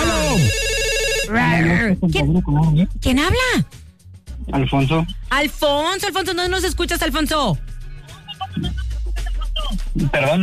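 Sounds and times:
electronic telephone ringtone for an incoming call in a radio studio: 0.0s - 1.8s
speech: 1.3s - 3.8s, 4.4s - 7.7s, 8.5s - 8.9s, 9.7s - 10.4s.

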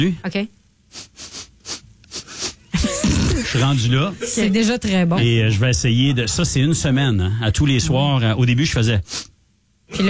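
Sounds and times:
speech: 0.0s - 1.3s, 3.4s - 9.3s
rhythmic nasal sniffing carrying a song tune: 0.9s - 3.4s, 9.0s - 9.4s.

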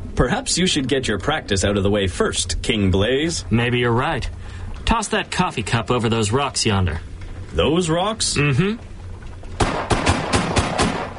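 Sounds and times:
steady hissing background: 0.0s - 11.1s
speech: 0.2s - 8.9s
gunshots fired at a tossed coffee cup: 9.6s - 11.1s.

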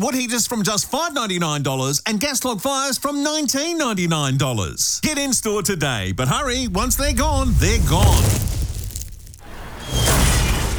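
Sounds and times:
speech: 0.0s - 8.6s
low rumble of a rogue space capsule smashing a house roof and carport: 4.4s - 9.8s
crash and shattering of a smashed house roof and carport: 5.0s - 10.7s.

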